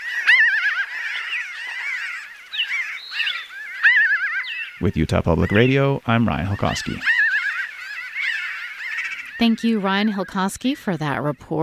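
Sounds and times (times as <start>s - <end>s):
chorus of strange laughing bird calls: 0.0s - 11.6s
speech: 4.8s - 7.1s, 9.4s - 11.6s.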